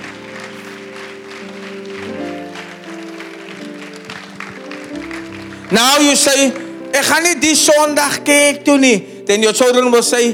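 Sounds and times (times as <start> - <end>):
church audience clapping: 0.0 - 8.0
speech: 5.7 - 10.3.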